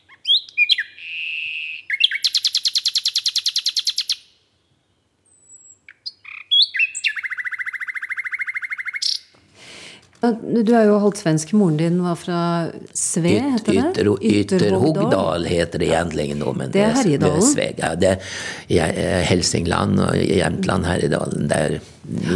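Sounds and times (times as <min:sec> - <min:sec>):
elaborate virtuosic bird song with whistled phrases and metallic trills: 0:00.0 - 0:09.3
speech: 0:10.2 - 0:22.3
laughter: 0:13.3 - 0:18.2, 0:22.1 - 0:22.3.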